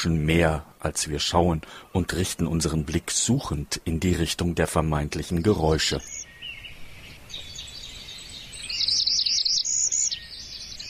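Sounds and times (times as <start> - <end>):
speech: 0.0 - 6.3
migratory bird calls in a swamp area: 5.2 - 10.8.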